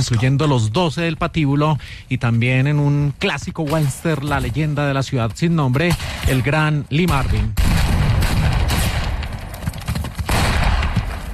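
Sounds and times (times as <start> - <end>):
speech: 0.0 - 8.0
dense gunfire from a war film battle: 5.9 - 11.3.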